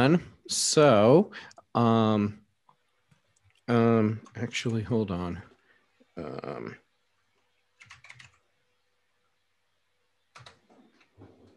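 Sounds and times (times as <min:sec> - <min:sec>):
speech: 0:00.0 - 0:02.4, 0:03.7 - 0:05.5, 0:06.2 - 0:06.8
computer keyboard clicking: 0:07.8 - 0:08.4, 0:10.3 - 0:11.2.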